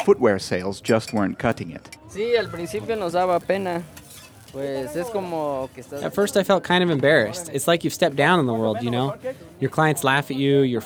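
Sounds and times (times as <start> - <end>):
speech: 0.0 - 10.8
snack frying with a soft sizzle on a skillet: 2.4 - 6.3
squeaky scraping from stirring a snack on a street vendor's skillet: 2.5 - 6.0.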